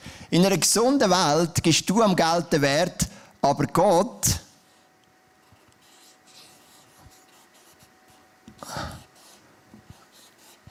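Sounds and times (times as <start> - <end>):
speech: 0.3 - 4.4
pen scratching on a surface: 5.4 - 8.2, 9.0 - 10.6.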